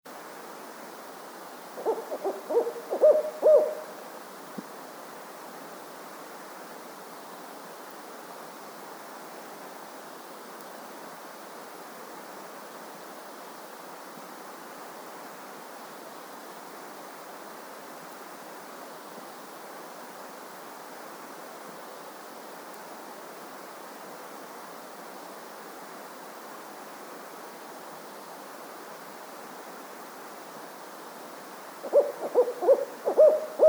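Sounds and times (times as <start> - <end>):
Strix fulvescens calling: 1.8 - 4.0, 31.8 - 33.6.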